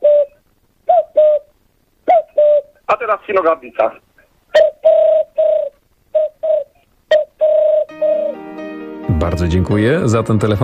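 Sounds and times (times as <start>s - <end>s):
human voice imitating a cuckoo call: 0.0s - 2.8s, 4.6s - 8.4s
speech: 3.0s - 4.1s, 9.2s - 10.6s.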